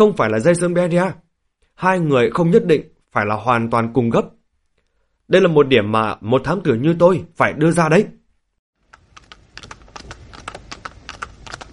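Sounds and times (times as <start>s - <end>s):
speech: 0.0s - 1.2s, 1.8s - 4.4s, 5.3s - 8.2s
hooves of a luxurious horse-drawn carriage clopping along an avenue: 8.8s - 11.7s.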